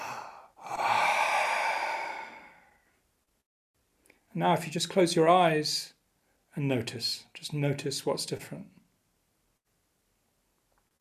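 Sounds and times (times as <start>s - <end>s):
deep breath exhaled during a guided breathing exercise: 0.0s - 3.0s
speech: 4.4s - 6.0s, 6.6s - 8.8s.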